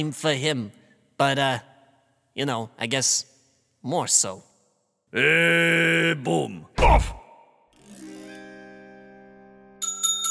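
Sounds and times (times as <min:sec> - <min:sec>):
speech: 0:00.0 - 0:01.7, 0:02.4 - 0:04.5, 0:05.1 - 0:07.2
bell ringing with a bright sustained tone: 0:09.8 - 0:10.3.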